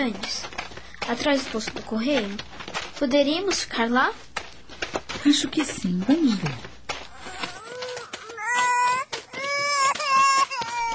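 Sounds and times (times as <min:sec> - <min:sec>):
speech: 0:00.0 - 0:00.5, 0:01.1 - 0:04.3, 0:05.2 - 0:06.7
baby crying: 0:07.1 - 0:10.9.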